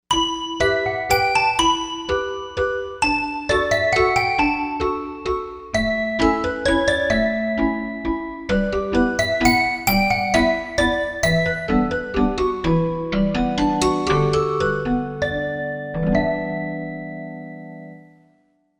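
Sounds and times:
toy piano on a Korg M1: 0:00.1 - 0:18.0.

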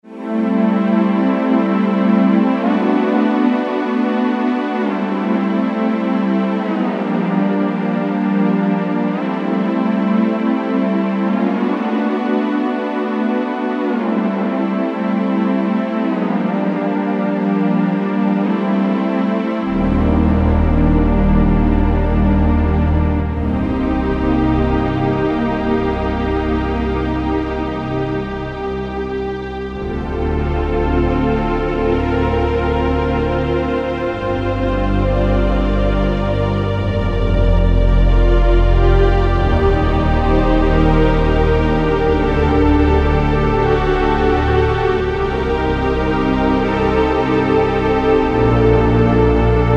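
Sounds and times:
Generalmusic S2R pad sound: 0:00.0 - 0:49.7.

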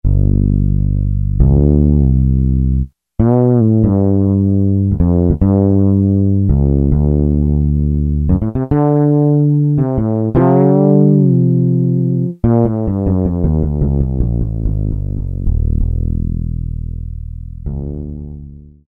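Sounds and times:
Roland U-110 fretless bass factory patch: 0:00.0 - 0:18.8.

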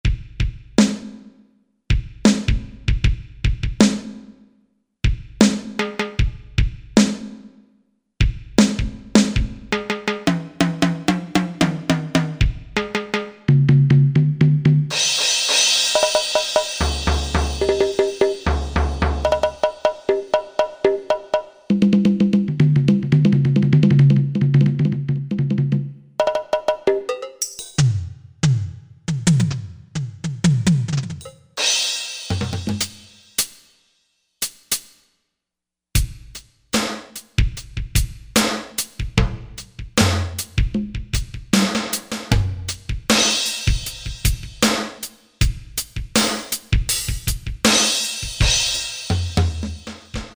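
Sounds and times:
PCM drums: 0:00.0 - 0:07.6, 0:08.2 - 0:35.1, 0:36.0 - 0:50.3.

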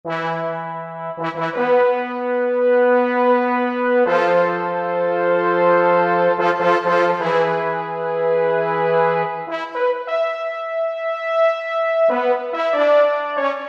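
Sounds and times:
4 trombones playing: 0:00.0 - 0:13.6.

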